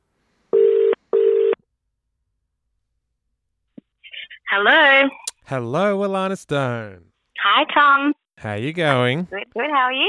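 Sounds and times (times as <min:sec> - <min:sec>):
telephone ringing tone: 0:00.6 - 0:01.6
speech: 0:04.5 - 0:10.0.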